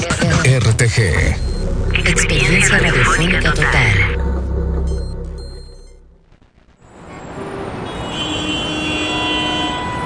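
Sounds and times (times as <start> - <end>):
street traffic: 0.0 - 10.0
speech: 0.6 - 4.2
low engine drone: 1.0 - 7.1.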